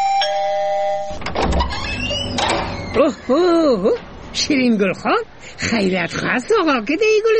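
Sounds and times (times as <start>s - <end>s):
gate doorbell chiming: 0.0s - 1.2s
rumbling and clattering: 1.2s - 4.2s
speech: 3.0s - 7.3s.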